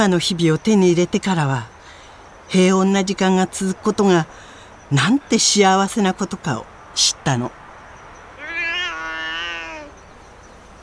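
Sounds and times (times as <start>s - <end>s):
speech: 0.0s - 1.7s, 2.5s - 7.6s
faint hiss: 0.0s - 10.8s
11-year-old calico cat meowing: 8.4s - 10.0s.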